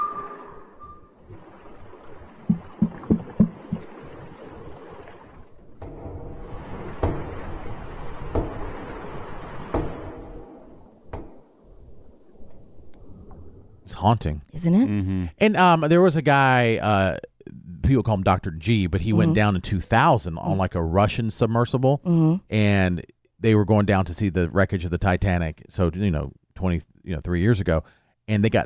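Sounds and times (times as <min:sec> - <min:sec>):
underwater banging from ocean depths picked up by sonar: 0:00.0 - 0:13.6
speech: 0:14.0 - 0:17.3, 0:17.9 - 0:28.6.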